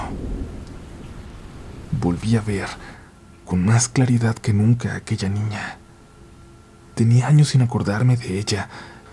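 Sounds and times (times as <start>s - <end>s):
rolling thunder from a lightning strike: 0.0s - 3.0s
crackling burst: 0.0s - 3.1s
faint rain-like hiss: 0.0s - 9.1s
speech: 2.0s - 5.8s, 7.0s - 9.0s.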